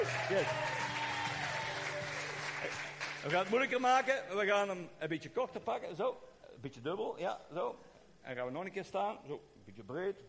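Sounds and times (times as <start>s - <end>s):
cheer: 0.0s - 3.0s
group applause: 0.0s - 4.0s
speech: 0.3s - 0.8s, 2.6s - 10.2s.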